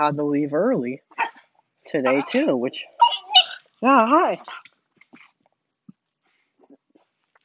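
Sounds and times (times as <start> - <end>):
speech: 0.0 - 1.2, 1.9 - 3.0, 3.8 - 4.6
dogs whimpering and whining: 2.1 - 3.7.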